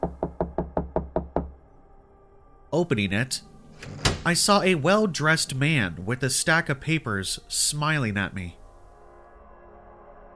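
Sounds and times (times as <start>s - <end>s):
firm knocks on a door: 0.0s - 1.6s
speech: 2.7s - 8.6s.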